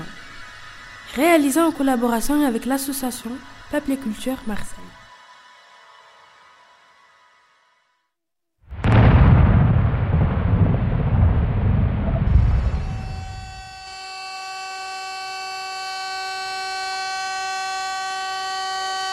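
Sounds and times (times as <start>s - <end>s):
speech: 1.2s - 5.0s
nuclear reactor explosion boom and roar: 8.7s - 13.8s
steady high ringing tones: 12.4s - 14.4s.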